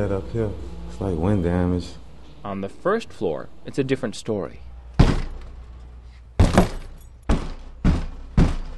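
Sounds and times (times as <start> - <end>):
speech: 0.0 - 4.7
man pushing and kicking a stuck wooden front door of a flooded house: 5.0 - 5.4, 6.4 - 8.7.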